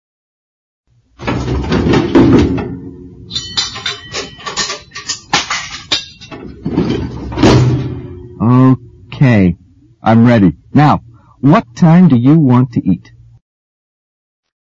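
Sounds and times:
kitchen drawer under the oven sliding with a rumbling scrape: 1.2 - 2.8, 6.4 - 7.9
big pot clattering and clinking as it is pulled out: 1.2 - 8.3
speech: 9.2 - 13.1.

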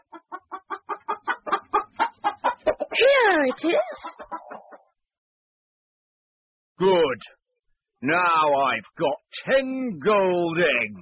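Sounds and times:
chicken clucking: 0.0 - 5.0
speech: 3.1 - 4.2, 8.0 - 11.0.

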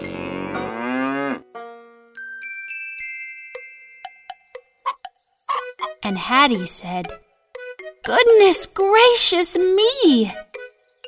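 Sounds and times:
cow mooing: 0.0 - 1.5
bright ringing chime notes: 2.1 - 4.8
quick tinkling plinks: 2.2 - 5.6
speech: 6.1 - 7.2, 8.0 - 10.5.

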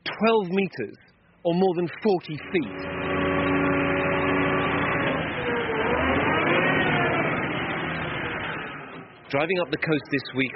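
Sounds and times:
construction engine drone from building tsunami walls in a coastal town: 0.0 - 10.5
speech: 0.2 - 3.0, 9.3 - 10.5.

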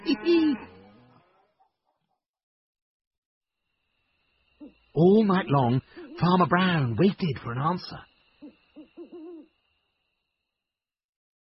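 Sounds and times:
speech: 0.0 - 0.7, 5.0 - 8.1
human voice imitating cows mooing: 0.0 - 1.4.

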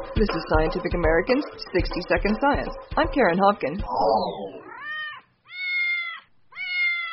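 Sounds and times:
speech: 0.2 - 4.7
house cat meowing: 4.5 - 7.1.

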